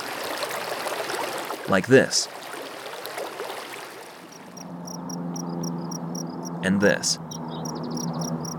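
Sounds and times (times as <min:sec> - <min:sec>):
flowing creek water: 0:00.0 - 0:04.7
speech: 0:01.7 - 0:02.4, 0:06.6 - 0:07.2
insect chirps by a creek: 0:04.3 - 0:06.6, 0:07.3 - 0:08.5.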